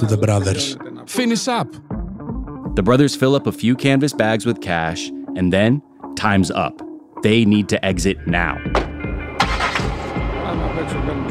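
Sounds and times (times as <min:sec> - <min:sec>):
speech: 0:00.0 - 0:01.9, 0:02.8 - 0:08.8
getaway car engine starting and rumbling: 0:09.0 - 0:11.1.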